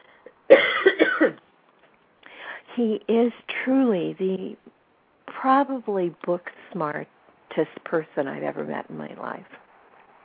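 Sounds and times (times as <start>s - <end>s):
person coughing: 0.5s - 1.4s
speech: 2.8s - 4.7s, 5.4s - 9.6s.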